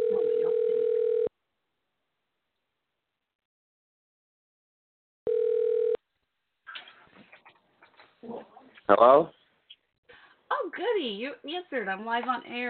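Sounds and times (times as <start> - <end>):
phone ringing tone beep while calling a friend: 0.0 - 1.3, 5.3 - 6.0
speech: 8.9 - 9.4, 10.8 - 12.6.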